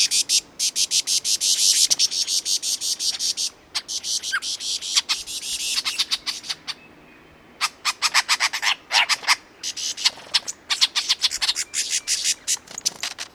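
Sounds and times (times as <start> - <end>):
lyrebird mimicry: 0.0 - 6.9, 7.6 - 12.7.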